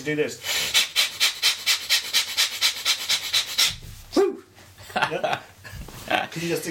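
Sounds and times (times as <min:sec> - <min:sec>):
speech: 0:00.0 - 0:00.5, 0:05.0 - 0:05.5, 0:06.3 - 0:06.6
rapid breathing in and out through the nose: 0:00.4 - 0:03.8.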